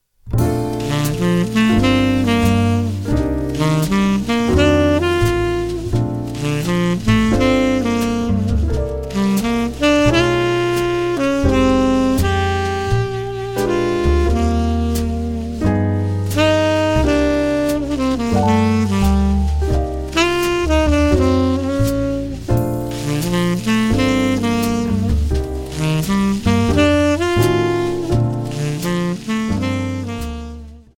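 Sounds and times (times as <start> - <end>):
tenor saxophone phrasing: 0.8 - 30.9.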